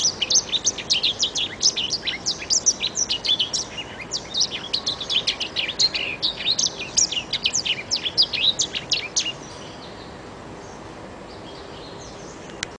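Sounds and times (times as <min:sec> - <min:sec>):
Oriental magpie-robin song: 0:00.0 - 0:12.7.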